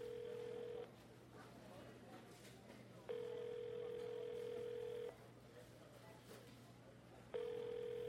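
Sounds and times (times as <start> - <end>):
phone ringback tone: 0.0 - 0.8, 3.1 - 5.1, 7.4 - 8.0
faint murmur: 0.0 - 8.0.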